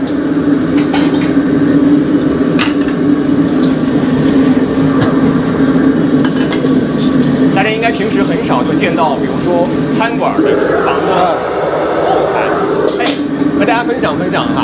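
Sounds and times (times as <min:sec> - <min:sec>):
powerful gas burner roaring: 0:00.0 - 0:14.6
wok being rinsed over the flame: 0:00.7 - 0:01.4, 0:02.5 - 0:03.8, 0:06.2 - 0:07.0.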